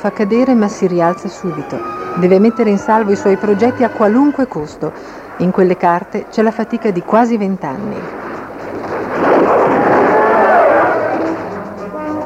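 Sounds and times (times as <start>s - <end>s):
speech: 0.0s - 8.2s
bombs exploding during a bombing raid: 7.8s - 12.0s.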